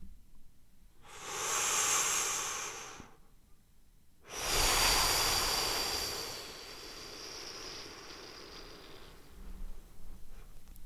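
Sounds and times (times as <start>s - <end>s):
hissing ujjayi throat breaths: 1.0s - 3.2s, 4.3s - 10.0s.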